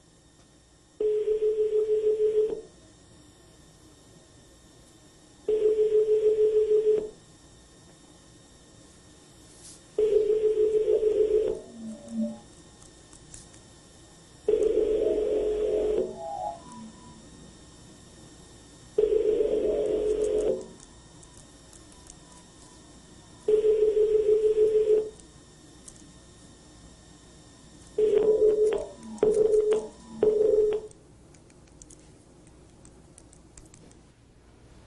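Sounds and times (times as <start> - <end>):
telephone line ringback tone: 1.0 - 2.7, 5.5 - 7.1, 10.0 - 12.4, 14.5 - 17.2, 19.0 - 20.7, 23.4 - 25.2, 28.0 - 30.9.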